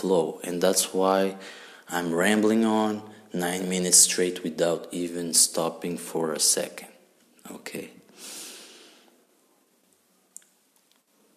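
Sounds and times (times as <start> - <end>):
speech: 0.0 - 8.3
deep breath drawn in sharply through the nose: 1.4 - 1.9, 8.1 - 9.2.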